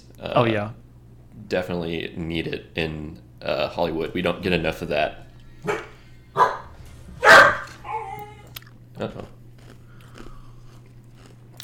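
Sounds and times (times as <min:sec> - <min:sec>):
low steady hum: 0:00.0 - 0:11.6
speech: 0:00.2 - 0:00.8, 0:01.4 - 0:05.9, 0:09.0 - 0:09.4
person crunching on an ice cube: 0:08.5 - 0:11.6.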